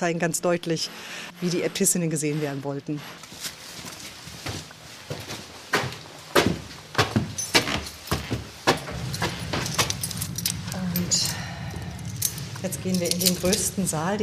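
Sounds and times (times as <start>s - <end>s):
speech: 0.0s - 3.5s, 12.6s - 14.2s
faint hum: 0.0s - 14.2s
bunch of keys jingling and clinking: 7.3s - 14.0s.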